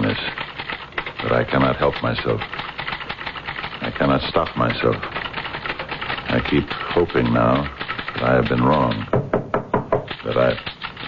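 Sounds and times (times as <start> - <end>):
person speaking indistinctly: 0.0 - 2.8, 3.6 - 9.2, 10.0 - 11.0
speech: 1.3 - 2.6, 3.9 - 5.2, 6.3 - 9.2, 10.3 - 10.7
knocking on a door: 9.0 - 10.2.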